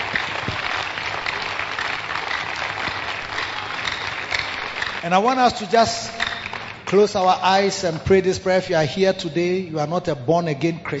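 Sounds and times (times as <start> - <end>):
large audience clapping: 0.0 - 8.0
speech: 5.0 - 6.2, 6.9 - 10.9.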